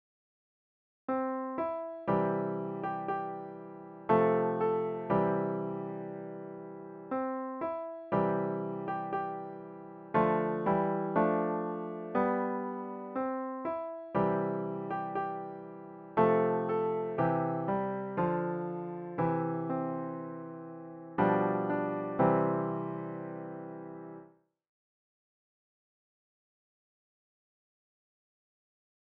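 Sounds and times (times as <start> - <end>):
solo piano folk song: 1.1 - 24.4.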